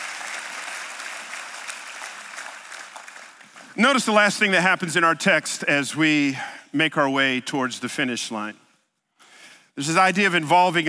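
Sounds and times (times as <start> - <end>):
audience applauding: 0.0 - 3.8
speech: 3.8 - 8.6, 9.8 - 10.8.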